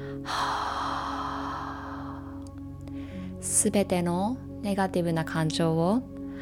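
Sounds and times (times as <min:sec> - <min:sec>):
deep breath in and out during a guided breathing exercise: 0:00.0 - 0:03.4
speech: 0:03.6 - 0:06.2.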